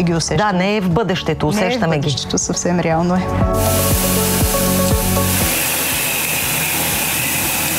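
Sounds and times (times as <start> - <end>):
speech: 0.0 - 4.4
fertilizer mixer injecting into drip irrigation humming: 3.5 - 7.7
hiss of flowing liquid in a fertilizer mixer: 3.5 - 7.7.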